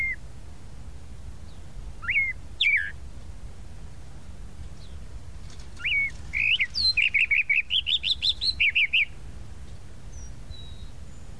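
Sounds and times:
Tropical mockingbird singing a rapid phrase: 0.0s - 0.2s, 1.4s - 3.0s, 5.8s - 11.3s.

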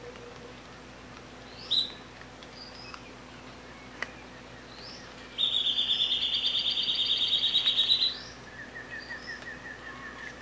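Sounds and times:
rufous gnateater song: 3.8s - 10.4s.

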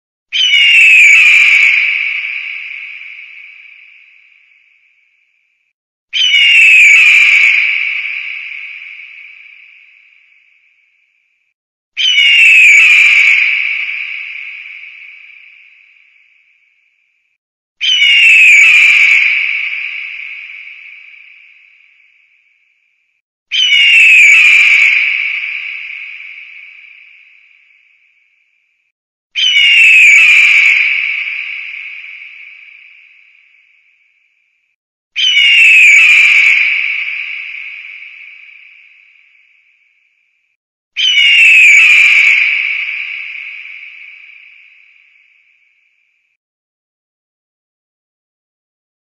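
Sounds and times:
sea eagle calling: 0.3s - 3.5s, 6.1s - 9.6s, 12.0s - 15.4s, 17.8s - 21.4s, 23.5s - 26.6s, 29.4s - 32.0s, 35.2s - 38.5s, 41.0s - 44.0s.

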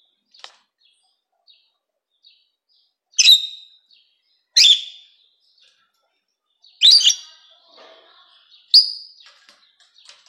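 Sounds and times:
rosy-faced lovebird chirping: 0.2s - 5.8s, 6.6s - 7.4s, 8.6s - 10.2s.

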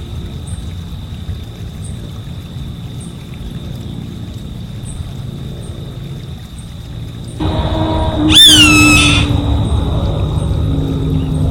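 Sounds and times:
savanna hawk giving a harsh downslurred scream: 7.4s - 11.4s.

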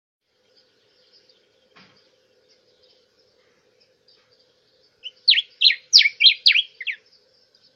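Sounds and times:
diuca finch whistled slurred song: 5.0s - 7.0s.

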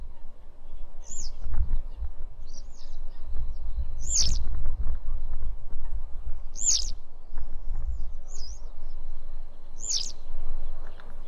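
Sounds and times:
citrine wagtail giving sharp high slurred call notes: 0.0s - 4.4s, 5.8s - 7.0s, 8.3s - 11.2s
low rumbling noise: 0.0s - 11.2s.

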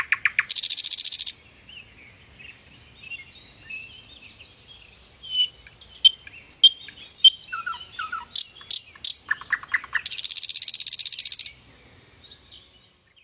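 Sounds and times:
thrush nightingale song with rattles, warbling, whistles and clicks: 0.0s - 13.2s.

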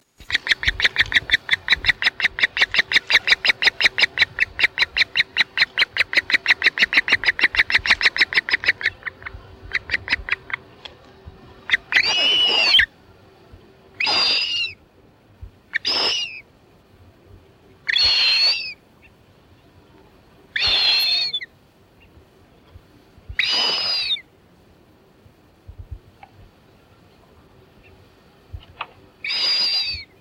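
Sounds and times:
frigatebird call: 0.2s - 10.8s, 11.5s - 12.9s, 14.0s - 14.8s, 15.7s - 16.5s, 17.8s - 19.2s, 20.5s - 22.2s, 23.4s - 24.2s, 29.2s - 30.1s.

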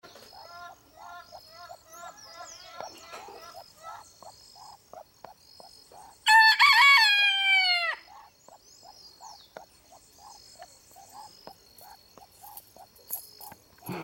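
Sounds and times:
red junglefowl rooster crowing: 6.2s - 8.0s.

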